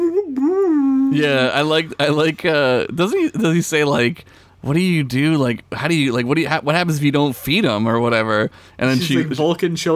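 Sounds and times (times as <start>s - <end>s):
person vocally imitating a cartoonish lion-like creature's howl: 0.0s - 1.4s
speech: 1.1s - 9.9s.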